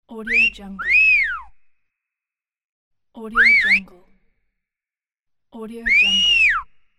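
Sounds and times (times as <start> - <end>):
whistling: 0.2 - 1.6, 3.4 - 3.9, 5.8 - 6.9.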